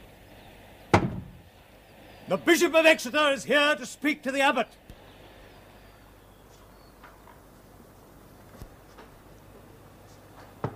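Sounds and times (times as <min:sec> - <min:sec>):
heavy wooden door being barred shut: 0:00.9 - 0:01.4
speech: 0:02.3 - 0:04.9.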